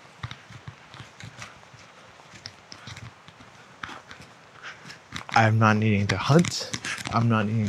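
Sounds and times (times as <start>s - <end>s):
footsteps of a person walking: 0.0s - 7.6s
speech: 5.4s - 7.6s.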